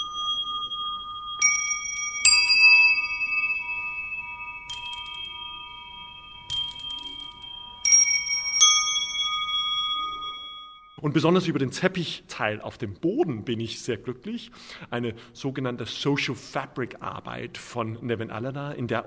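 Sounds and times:
glockenspiel in an art installation played by musicians: 0.0s - 11.1s
speech: 11.0s - 19.0s.

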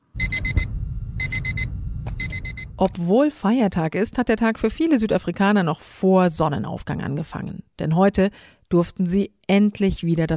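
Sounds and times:
steady low rumble: 0.1s - 3.1s
alarm clock beeping on a May Day holiday morning in South Africa: 0.2s - 2.9s
speech: 2.8s - 10.3s.

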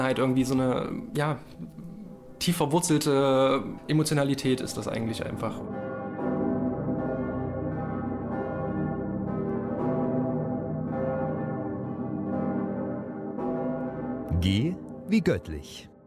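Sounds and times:
church bells ringing in an overlapping peal: 0.0s - 16.0s
speech: 0.1s - 5.9s, 14.4s - 15.9s.

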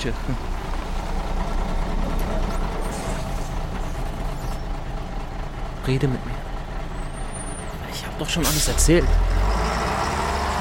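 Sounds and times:
speech: 0.0s - 0.6s, 5.8s - 6.4s, 8.2s - 9.2s
heavy bus engine droning as it pulls up and idles: 0.0s - 10.5s
bus brakes hissing and squealing: 1.9s - 5.5s, 6.8s - 10.3s.

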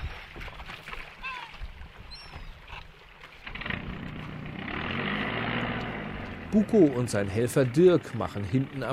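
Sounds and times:
water splashing: 0.0s - 8.9s
faint bird calls: 1.2s - 2.9s
motorboat engine rumbling across open water: 1.7s - 8.9s
speech: 6.5s - 8.9s.

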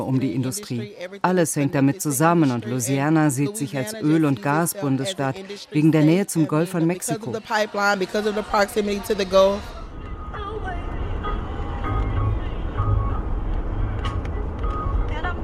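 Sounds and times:
car radio playing music with a voice: 0.0s - 15.4s
speech: 0.1s - 9.8s
car driving at speed on highway: 10.0s - 15.4s.

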